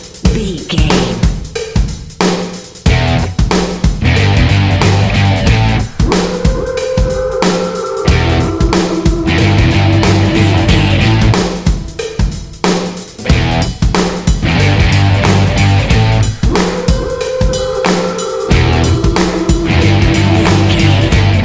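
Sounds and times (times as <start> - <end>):
gritty vocal singing: 0.2 - 1.3, 5.6 - 12.0, 15.4 - 21.4
powerful blues rock music: 2.8 - 21.4.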